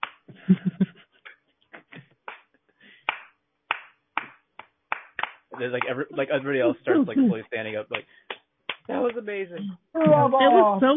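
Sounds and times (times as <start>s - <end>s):
single pair of hands slow clapping: 0.0s - 0.6s, 1.8s - 6.7s, 7.6s - 10.3s
laughter: 0.4s - 1.0s, 5.6s - 7.9s, 10.0s - 10.9s
speech: 0.5s - 0.8s, 5.6s - 8.3s, 8.9s - 10.9s.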